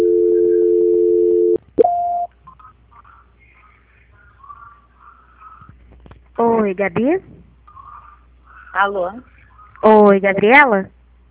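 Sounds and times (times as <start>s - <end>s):
telephone line tones after a dropped call: 0.0s - 2.3s
speech: 6.6s - 7.4s, 8.7s - 11.0s.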